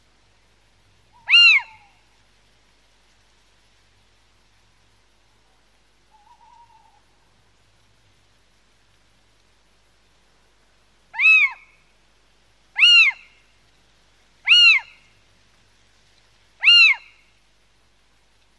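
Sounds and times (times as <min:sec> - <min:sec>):
little owl giving arched mewing kiew calls: 0:01.1 - 0:02.0, 0:06.1 - 0:07.0, 0:11.2 - 0:11.8, 0:12.8 - 0:13.4, 0:14.4 - 0:15.0, 0:16.6 - 0:17.2.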